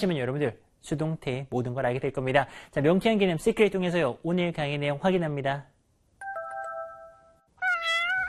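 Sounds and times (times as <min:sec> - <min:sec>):
speech: 0:00.0 - 0:05.7
electronic two-tone chime: 0:06.2 - 0:07.5
cat meowing: 0:07.6 - 0:08.2.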